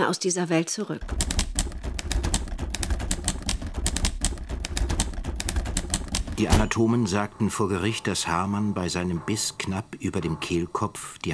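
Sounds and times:
speech: 0.0s - 1.4s, 6.4s - 11.3s
typewriter clattering as a book manuscript is typed in a study: 1.0s - 7.0s.

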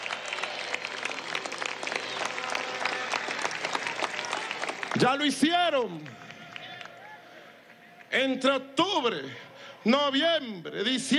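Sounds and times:
crowd applauding at a political event: 0.0s - 8.1s
speech: 5.0s - 6.3s, 8.1s - 11.1s.

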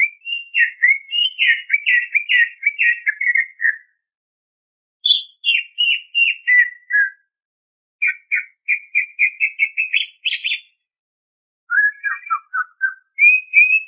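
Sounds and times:
greater green leafbird song of whistled and chattering notes: 0.0s - 3.8s, 5.0s - 7.1s, 8.0s - 10.7s, 11.7s - 13.8s.

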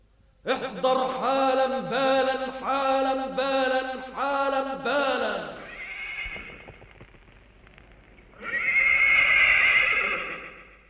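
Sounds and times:
speech: 0.4s - 5.6s
horse neighing: 5.6s - 6.6s, 8.4s - 10.8s.

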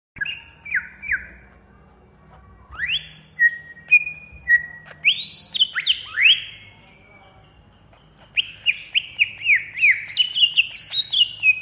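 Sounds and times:
Greater green leafbird giving clear whistled notes in an agitated intense style: 0.2s - 1.4s, 2.7s - 6.7s, 8.2s - 11.6s.

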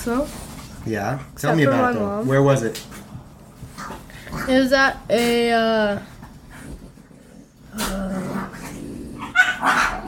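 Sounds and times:
speech: 0.0s - 3.0s, 4.3s - 6.1s
dogs whining: 7.9s - 10.0s
dogs barking and whimpering: 9.1s - 10.0s.

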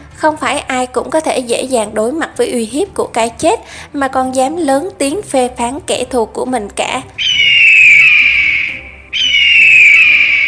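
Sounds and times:
speech: 0.2s - 7.4s
shrill hawk cry from far away: 7.2s - 10.4s.

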